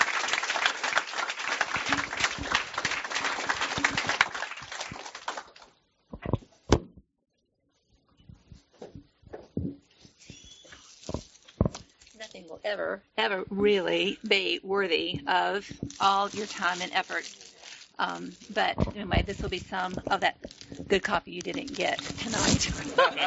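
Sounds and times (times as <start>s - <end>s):
crowd clapping: 0.0s - 5.8s
thumps: 6.1s - 7.1s, 8.2s - 12.0s, 14.3s - 23.0s
speech: 12.7s - 17.4s, 18.0s - 23.2s
laughter: 22.8s - 23.2s.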